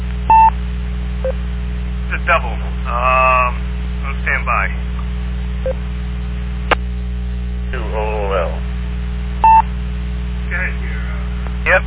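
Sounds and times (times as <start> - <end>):
steady low electrical hum on a narrowband radio channel: 0.0 - 11.8
hiss of a narrowband radio channel: 2.0 - 5.6, 6.6 - 11.8
speech: 2.3 - 3.3
touch-tone phone dial beep over a radio repeater: 9.4 - 9.6.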